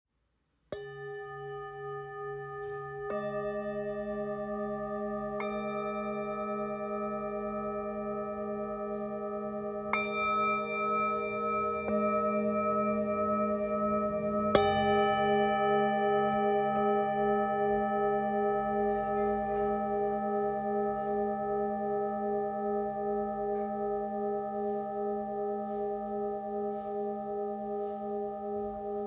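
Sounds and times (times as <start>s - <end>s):
singing bowl: 0.7s - 29.0s.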